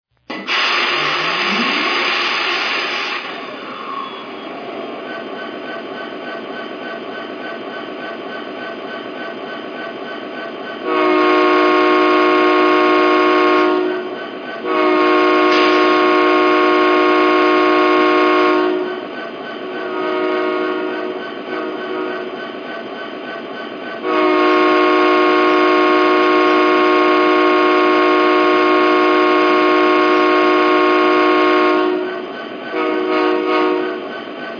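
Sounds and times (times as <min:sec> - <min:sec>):
SD90MAC diesel locomotive: 0:00.3 - 0:34.5.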